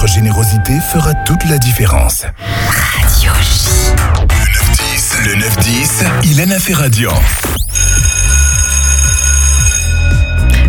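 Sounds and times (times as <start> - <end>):
speech: 0.1 - 4.3, 5.2 - 7.6
school bell ringing at the end of recess: 7.8 - 10.4.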